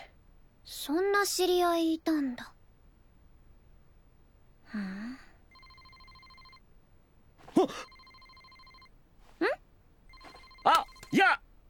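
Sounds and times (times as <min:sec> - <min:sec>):
speech: 0:00.8 - 0:02.6, 0:07.6 - 0:07.9
phone ringing with electronic tones: 0:05.5 - 0:06.6, 0:07.6 - 0:09.0, 0:10.1 - 0:11.3
person gasping and exclaiming: 0:07.5 - 0:07.9.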